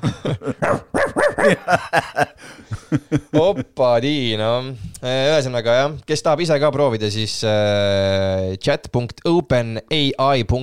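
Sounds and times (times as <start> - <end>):
speech: 0.0 - 0.8, 1.5 - 10.6
laughter: 0.0 - 3.8
dog barking: 0.6 - 1.7.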